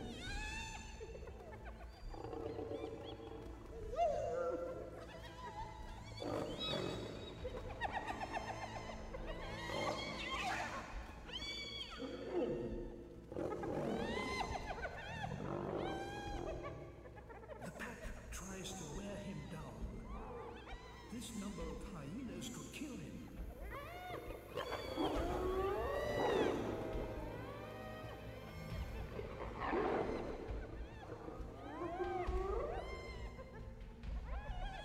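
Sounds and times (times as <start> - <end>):
hyena pack cackling and whooping while mobbing a lion: 0.0 - 34.8
snarling growls of hyena pack mobbing a lion: 0.0 - 34.8.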